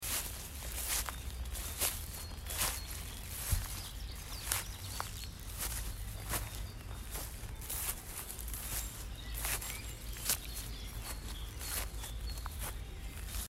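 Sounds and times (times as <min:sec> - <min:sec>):
footsteps through grass: 0:00.0 - 0:13.4.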